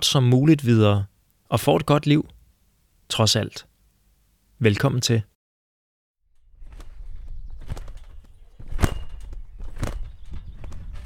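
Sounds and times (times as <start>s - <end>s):
speech: 0.0s - 2.4s, 3.1s - 3.7s, 4.6s - 5.3s
child bouncing on a garden trampoline outdoors: 6.4s - 11.0s.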